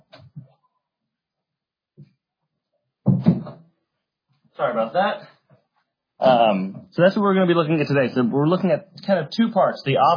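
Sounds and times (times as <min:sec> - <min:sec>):
soft knocks and shuffles: 0:03.0 - 0:03.7
speech: 0:04.6 - 0:05.3, 0:06.2 - 0:10.1.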